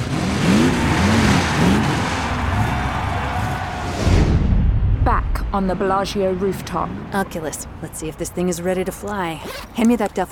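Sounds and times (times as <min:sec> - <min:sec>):
heavy monster truck engine revving: 0:00.0 - 0:04.0
roaring crowd in Las Vegas: 0:00.0 - 0:05.0
speech: 0:05.5 - 0:10.3.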